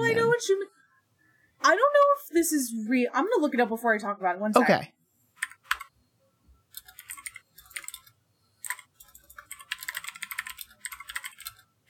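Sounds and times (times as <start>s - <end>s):
speech: 0.4s - 0.8s, 1.6s - 5.0s
clacky keystrokes on a computer keyboard: 5.4s - 5.9s, 6.7s - 11.8s.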